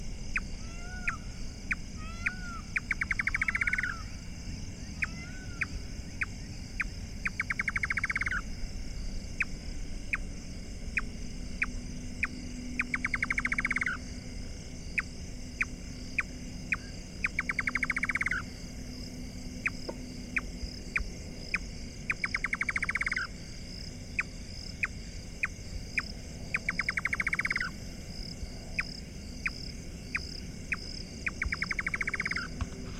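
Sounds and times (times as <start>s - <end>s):
Indian Nightjar Caprimulgus asiaticus: 0.0s - 32.9s.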